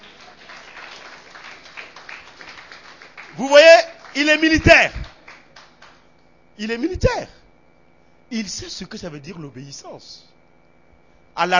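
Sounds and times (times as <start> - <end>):
audience applauding: 0.0 - 6.0
speech: 3.4 - 5.0, 6.6 - 7.4, 8.3 - 10.3, 11.4 - 11.5.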